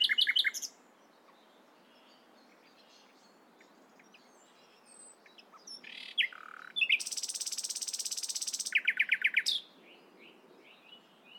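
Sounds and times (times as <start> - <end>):
common nightingale Luscinia megarhynchos singing: 0.0 - 11.3.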